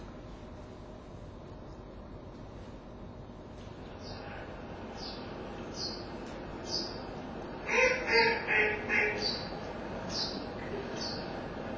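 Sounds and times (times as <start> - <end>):
smaller birds chirping thin and high: 3.8 - 11.7
bird giving a sharp repeated pe pe pe call: 7.6 - 10.9.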